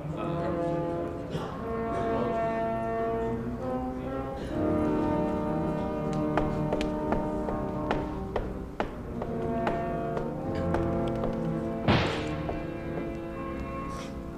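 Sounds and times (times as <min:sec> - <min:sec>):
humming tonal background: 0:00.2 - 0:14.3
gunshots from street fighting: 0:11.9 - 0:12.5.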